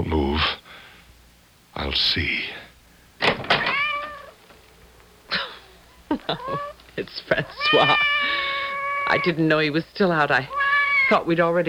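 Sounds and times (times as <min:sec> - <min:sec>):
speech: 0:01.8 - 0:02.6, 0:06.3 - 0:08.1, 0:09.1 - 0:11.6
cat meowing at the door: 0:03.5 - 0:06.8, 0:07.4 - 0:09.5, 0:10.4 - 0:11.3
laughter: 0:05.3 - 0:07.7.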